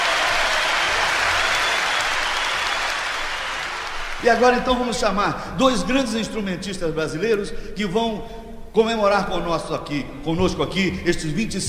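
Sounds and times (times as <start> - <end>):
large audience applauding: 0.0 - 4.8
speech: 4.2 - 11.6.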